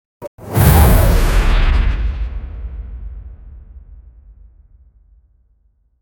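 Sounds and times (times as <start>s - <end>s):
comic explosion: 0.3s - 4.7s.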